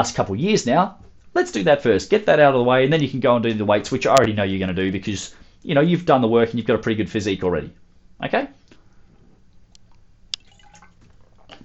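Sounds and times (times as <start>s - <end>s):
speech: 0.0s - 8.7s
person sipping water with soft wet mouth sounds: 9.8s - 11.6s.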